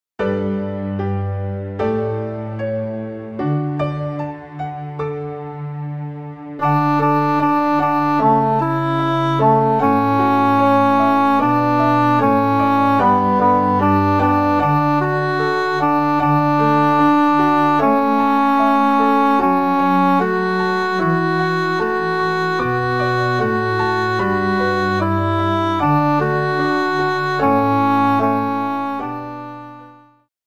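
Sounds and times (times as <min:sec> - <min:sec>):
backing tracks: 0:00.2 - 0:30.2
alto sample: 0:06.6 - 0:30.3.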